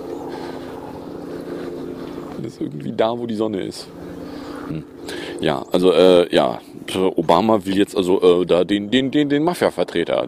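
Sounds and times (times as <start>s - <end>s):
helicopter flying overhead: 0.0s - 9.7s
speech: 2.5s - 4.1s, 4.7s - 10.2s.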